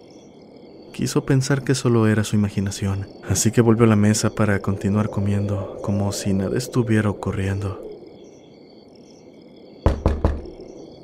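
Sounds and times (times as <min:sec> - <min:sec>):
speech: 0:01.0 - 0:07.9
loud heavy knocks pounding on a door: 0:09.8 - 0:10.6.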